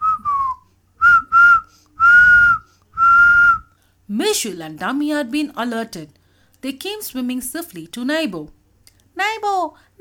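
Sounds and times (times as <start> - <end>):
clear steady whistle: 0.0 - 3.7
speech: 4.2 - 8.6, 9.2 - 9.9.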